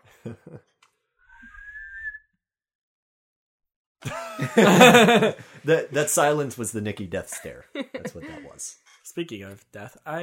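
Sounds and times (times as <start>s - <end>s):
speech: 0.2s - 0.7s, 4.0s - 10.2s
thin rising breathy whistle: 1.3s - 2.2s
several people laughing: 4.0s - 6.2s, 7.2s - 8.7s.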